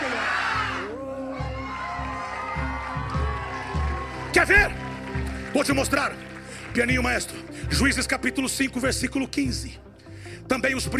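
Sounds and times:
large crowd at a religious service shouting a phrase in unison: 0.0s - 5.0s
crowd cheering at a religious service: 0.0s - 8.1s
speech: 4.4s - 9.9s, 10.5s - 10.9s.

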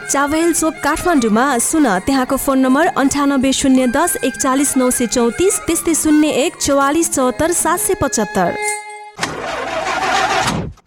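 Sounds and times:
speech: 0.1s - 8.7s
old broken-down car engine starting: 9.2s - 10.8s.

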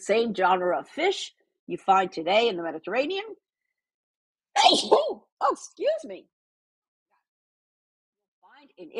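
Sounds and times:
speech: 0.0s - 3.4s, 4.6s - 6.3s, 8.8s - 8.9s
loud sneeze: 4.6s - 5.2s.

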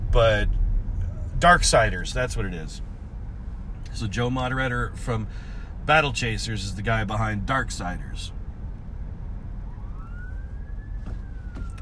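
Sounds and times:
heavy steady rumble of passing traffic: 0.0s - 11.8s
speech: 0.2s - 0.6s, 1.4s - 2.9s, 3.9s - 8.4s
emergency vehicle siren wailing across the median of a six-lane road: 9.1s - 11.8s.

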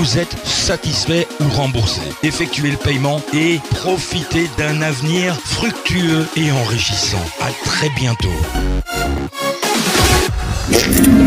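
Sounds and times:
speech: 0.0s - 9.6s, 10.7s - 11.2s
fart: 10.7s - 11.2s.

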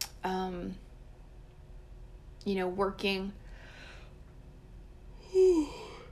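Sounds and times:
speech: 2.4s - 3.4s
breathy yawn with a voiced tone: 5.2s - 6.1s.

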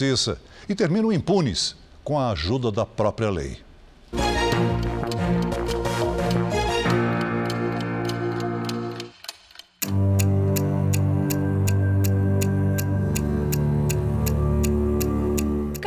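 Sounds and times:
speech: 0.0s - 4.4s
tense orchestral music: 4.1s - 9.2s, 9.8s - 15.8s
clock ticking: 4.4s - 15.8s.

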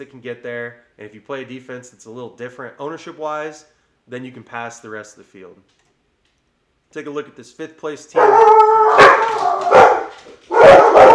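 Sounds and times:
speech: 0.0s - 5.8s, 6.9s - 8.6s
dog barking loud and sharp: 8.2s - 11.1s.

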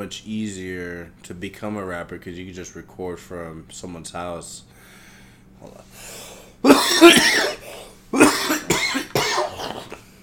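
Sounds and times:
speech: 0.0s - 5.0s, 5.6s - 7.6s
harsh raspy cough into the microphone: 6.6s - 10.1s.

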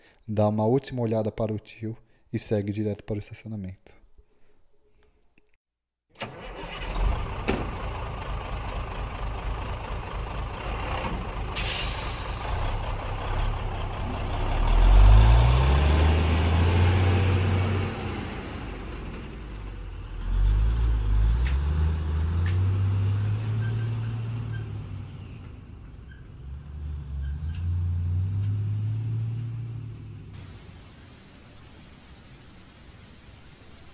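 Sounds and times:
speech: 0.3s - 4.0s
truck engine cranking, starting and revving through gears: 6.1s - 30.6s
truck air brake hiss: 11.6s - 12.6s.

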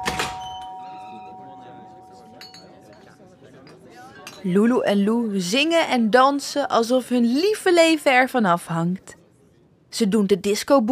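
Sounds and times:
doorbell ringing with a bright ding-dong chime: 0.0s - 2.8s
speech: 4.4s - 9.2s, 10.0s - 10.8s.

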